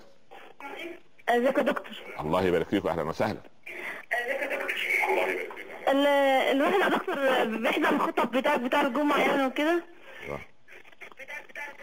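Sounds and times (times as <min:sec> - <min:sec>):
tinny television voices: 0:00.0 - 0:11.8
speech: 0:00.8 - 0:03.8, 0:05.9 - 0:10.5.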